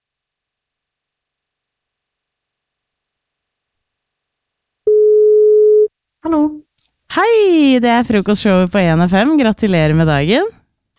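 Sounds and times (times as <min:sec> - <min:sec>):
telephone ringback tone: 0:04.9 - 0:05.9
speech: 0:07.2 - 0:10.6.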